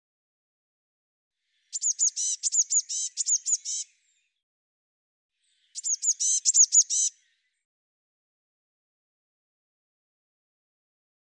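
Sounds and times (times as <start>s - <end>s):
Eurasian blue tit calling in rapid trills of sharp very high notes: 1.6s - 4.0s, 5.6s - 7.3s.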